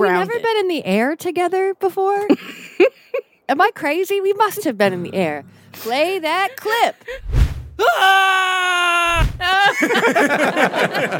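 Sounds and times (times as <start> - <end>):
speech: 0.0 - 11.1
person screaming on a Ferris wheel: 7.8 - 9.6
people shrieking and yelling on a Ferris wheel: 7.8 - 9.8
laughter: 9.4 - 11.1.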